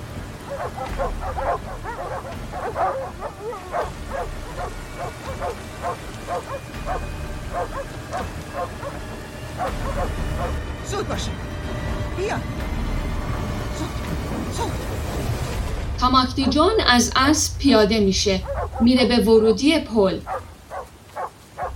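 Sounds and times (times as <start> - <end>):
dogs barking at a bridge entrance: 0.3 - 10.6, 18.4 - 19.2, 20.2 - 21.7
speech: 0.6 - 13.0, 13.8 - 20.4.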